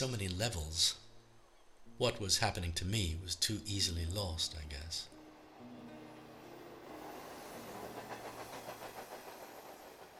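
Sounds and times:
speech: 0.0 - 1.0, 2.0 - 5.7
train speeding along rails through an inland plain: 5.2 - 10.1
clickety-clack of train wheels over track joints: 6.9 - 10.1.

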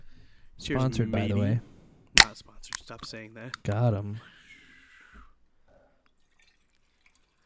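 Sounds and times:
speech: 0.6 - 1.7, 2.9 - 4.3
drink pouring into a glass: 6.2 - 7.4.

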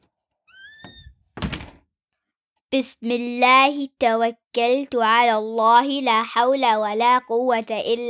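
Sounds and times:
door hinge creaking: 0.5 - 1.8
speech: 2.7 - 8.0.

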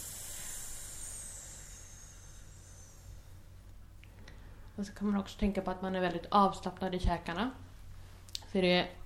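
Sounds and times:
long deep breath drawn in: 0.0 - 3.6
speech: 4.8 - 7.6, 8.5 - 9.0.

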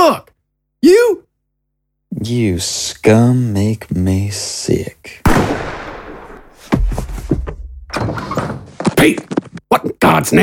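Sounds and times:
speech: 0.1 - 1.2, 2.2 - 5.7, 9.0 - 10.4
gunshot: 5.3 - 6.9.

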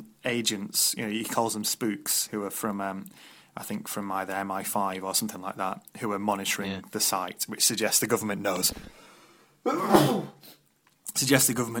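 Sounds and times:
speech: 0.2 - 10.6, 11.2 - 11.7
person sneezing: 9.7 - 10.6.

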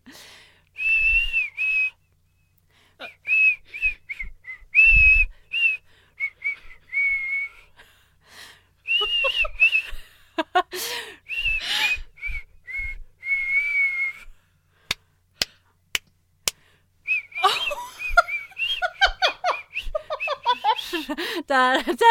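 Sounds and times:
person whistling a song melody: 0.8 - 2.1, 3.0 - 7.8, 8.9 - 10.0, 11.3 - 14.3, 17.1 - 20.9
person giggling and laughing: 9.0 - 11.2, 17.4 - 22.0
speech: 21.5 - 22.0.

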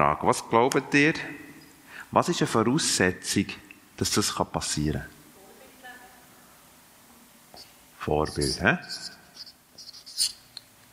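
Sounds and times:
speech: 0.0 - 1.4, 2.1 - 5.2, 8.0 - 9.2
marker pen squeaking across a board: 7.6 - 10.7.

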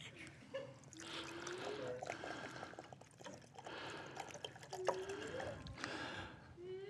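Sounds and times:
water pouring and trickling into a container: 0.8 - 6.1.

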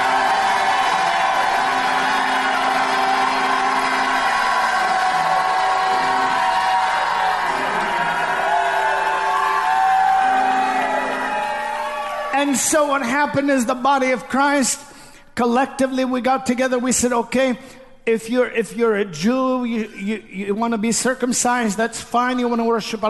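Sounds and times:
large crowd roaring and cheering with whoops and yells: 0.0 - 12.6
speech: 12.6 - 23.0.

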